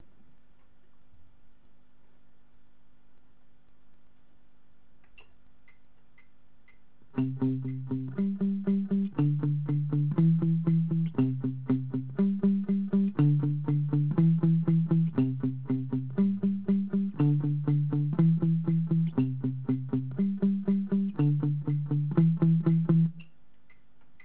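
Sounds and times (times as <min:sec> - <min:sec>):
palm-muted guitar: 0:07.1 - 0:23.3.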